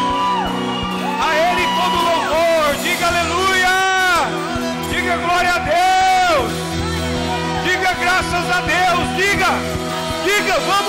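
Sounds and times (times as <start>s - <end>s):
steady music with a low rhythmic pulse: 0.0s - 10.8s
worship audience shouting and whooping: 0.0s - 10.8s.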